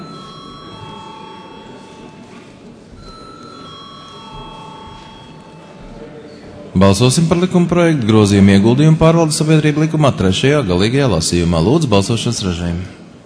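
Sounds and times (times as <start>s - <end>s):
parliament voting call bell ringing before a vote on a bill: 0.0s - 6.4s
soft murmur: 0.0s - 6.8s
speech: 6.8s - 13.0s.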